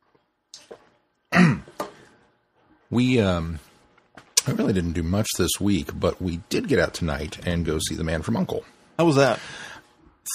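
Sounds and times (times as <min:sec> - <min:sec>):
person clearing a tickly throat: 0:01.3 - 0:01.9
speech: 0:02.9 - 0:03.7, 0:04.4 - 0:09.7.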